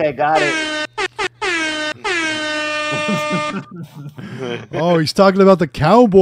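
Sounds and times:
speech: 0:00.0 - 0:00.8, 0:03.0 - 0:06.2
air horn blasts: 0:00.4 - 0:03.7
laughter: 0:02.0 - 0:05.2.

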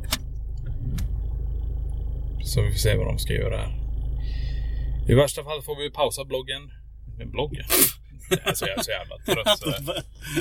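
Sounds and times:
car engine rumbling: 0:00.0 - 0:10.4
speech: 0:02.5 - 0:03.8, 0:05.1 - 0:10.4
laughter: 0:08.3 - 0:10.4.

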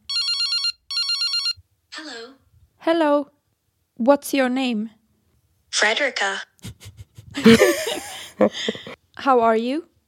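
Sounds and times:
outgoing phone call ringing tone: 0:00.1 - 0:01.6
speech: 0:02.2 - 0:03.4, 0:04.0 - 0:05.0, 0:05.7 - 0:09.9
laughter: 0:06.6 - 0:09.0.

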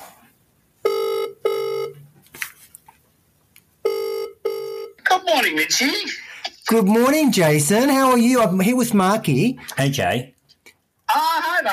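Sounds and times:
outgoing phone call ringback tone while phoning a builder: 0:00.8 - 0:02.0, 0:03.8 - 0:05.0
speech: 0:05.2 - 0:10.4.

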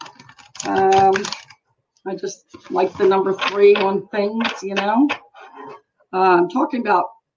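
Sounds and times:
deck of cards being riffle-shuffled: 0:00.0 - 0:01.6, 0:02.5 - 0:05.3
speech: 0:00.6 - 0:01.4, 0:02.0 - 0:05.2, 0:06.1 - 0:07.2.

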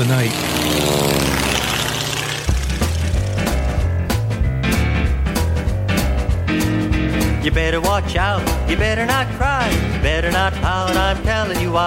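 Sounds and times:
speech: 0:00.0 - 0:01.2, 0:07.4 - 0:11.8
propeller airplane flying in to land: 0:00.0 - 0:04.0
upbeat music with a steady drumbeat and bouncing bass: 0:02.1 - 0:11.8.

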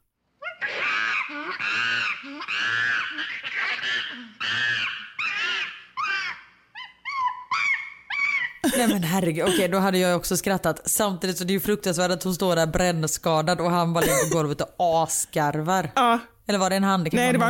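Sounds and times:
angry chimpanzee screaming: 0:00.4 - 0:08.6
laughter: 0:08.6 - 0:09.7, 0:14.0 - 0:14.4, 0:17.2 - 0:17.4
speech: 0:08.8 - 0:17.4.

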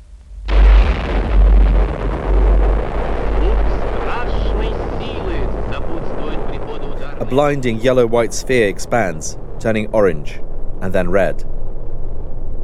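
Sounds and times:
bomb dropped from a plane on a parachute exploding: 0:00.0 - 0:09.7
deep sustained rumble after bomb explosion: 0:00.0 - 0:12.6
speech: 0:07.3 - 0:11.5.

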